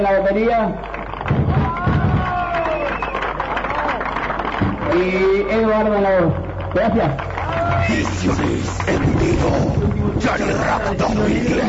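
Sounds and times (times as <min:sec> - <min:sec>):
speech: 0:00.0 - 0:01.0, 0:04.9 - 0:11.6
crowd applauding with dense clapping: 0:00.8 - 0:11.6
crowd cheering and shouting: 0:01.2 - 0:05.6, 0:07.2 - 0:11.6
rising whistle-like calls: 0:02.6 - 0:03.2.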